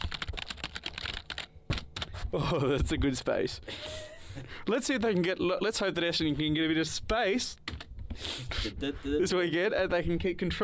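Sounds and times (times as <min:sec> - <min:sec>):
computer keyboard typing for a Google search: 0:00.0 - 0:02.2
speech: 0:02.3 - 0:07.7, 0:08.6 - 0:10.6.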